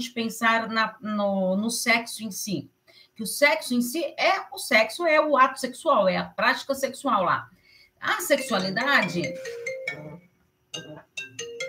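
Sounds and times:
speech: 0.0s - 9.7s
melodic electronic phone ringtone from an incoming call: 8.2s - 11.6s.

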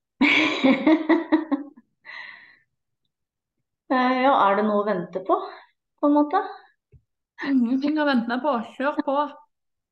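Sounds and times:
speech: 0.6s - 1.3s, 4.6s - 6.6s, 7.4s - 9.4s
deliberate deep breath: 2.0s - 2.7s.

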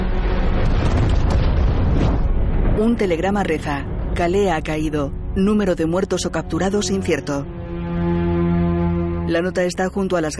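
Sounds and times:
fortress building exploding after an aircraft drops bombs: 0.2s - 3.1s
speech: 2.8s - 8.2s, 9.3s - 10.3s.

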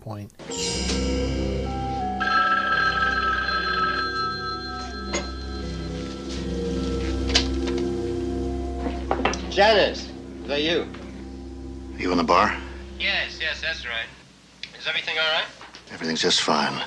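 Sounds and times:
speech: 0.1s - 1.2s, 9.6s - 11.0s, 12.0s - 14.2s, 14.8s - 16.8s
telephone bell ringing: 1.6s - 7.9s
faint hiss: 5.7s - 16.8s.

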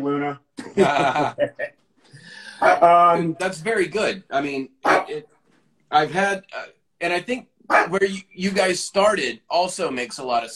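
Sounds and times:
speech: 0.3s - 5.3s, 5.9s - 10.5s
laughter: 0.6s - 1.8s
dog barking and growling: 2.6s - 2.9s, 4.8s - 5.3s, 7.7s - 8.1s.

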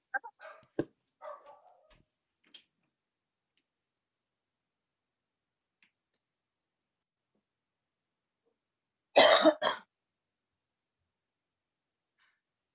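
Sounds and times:
dog barking sharply: 0.2s - 2.0s.

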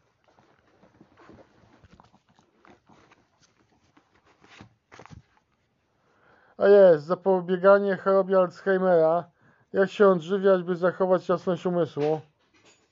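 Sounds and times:
small dog moving about: 0.0s - 5.3s
soft rustles and patters of a small dog: 0.0s - 5.8s
speech: 6.6s - 12.3s.

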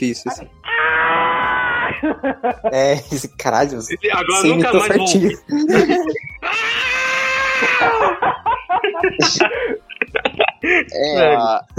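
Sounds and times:
speech: 0.0s - 1.2s, 1.9s - 6.4s, 7.6s - 9.8s, 10.6s - 11.7s
classic cartoon cat scream: 0.6s - 2.1s, 6.4s - 8.2s
laughter: 1.7s - 3.1s, 3.9s - 11.7s.

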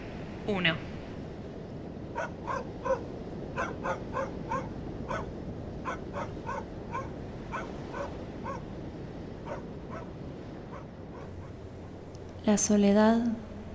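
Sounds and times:
steady hiss of noise: 0.0s - 13.7s
speech: 0.5s - 0.9s, 2.2s - 8.6s, 12.4s - 13.4s
dogs barking: 2.1s - 8.7s, 9.4s - 11.6s.

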